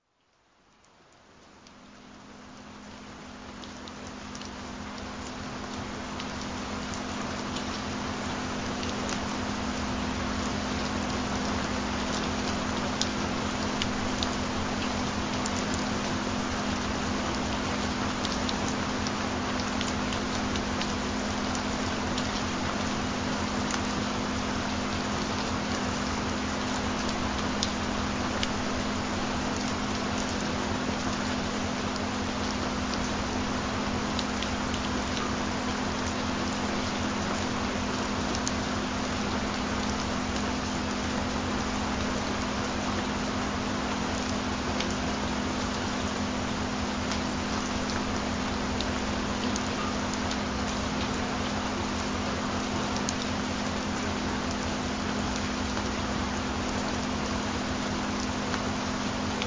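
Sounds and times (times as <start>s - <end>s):
rain: 0.0s - 59.4s.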